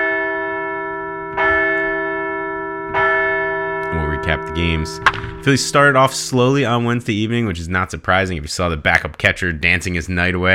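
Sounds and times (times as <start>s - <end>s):
bell ringing: 0.0s - 6.3s
speech: 4.3s - 10.5s.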